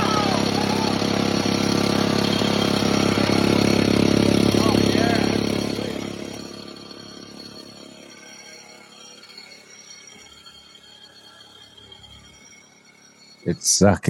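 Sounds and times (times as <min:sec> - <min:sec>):
faint voices murmuring: 0:00.0 - 0:06.6
engine idling with plastic tube on exhaust: 0:00.0 - 0:14.0
speech: 0:13.8 - 0:14.0.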